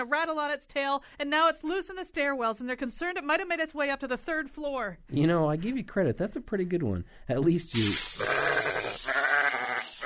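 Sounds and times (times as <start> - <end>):
speech: 0.0 - 8.4
sheep bleating: 8.1 - 10.0.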